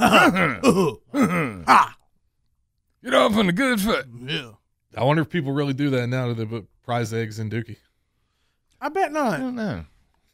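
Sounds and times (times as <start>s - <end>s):
man clearing his throat with rough, strained, gravelly bursts: 0.0s - 1.9s
speech: 0.0s - 2.0s, 3.0s - 7.8s, 8.8s - 9.9s.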